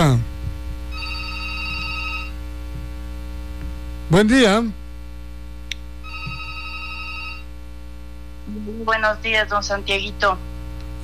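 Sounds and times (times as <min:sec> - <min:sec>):
constant low hum: 0:00.0 - 0:11.0
telephone ringing with steady electronic tone: 0:00.9 - 0:02.4, 0:06.0 - 0:07.5
speech: 0:04.1 - 0:04.8, 0:08.9 - 0:11.0.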